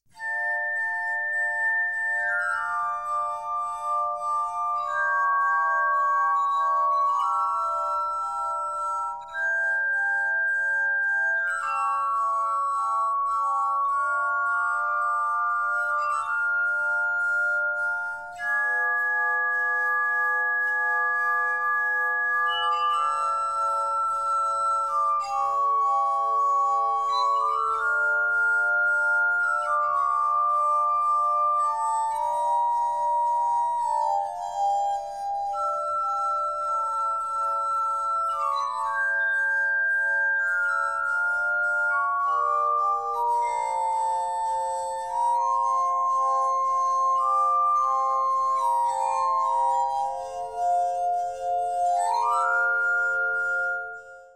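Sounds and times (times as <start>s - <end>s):
baroque instrumental suite with bell-like tones: 0.0s - 54.3s.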